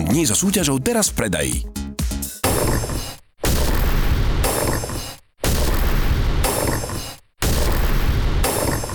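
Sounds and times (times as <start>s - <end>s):
speech: 0.1s - 1.8s
clock ticking amplified to a deafening distorted level: 2.4s - 8.9s.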